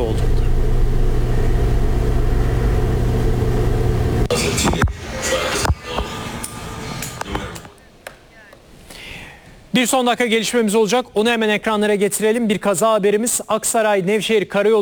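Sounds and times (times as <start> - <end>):
heavy steady roar of a space rocket engine in Florida: 0.0 - 7.8
speech: 9.8 - 14.8.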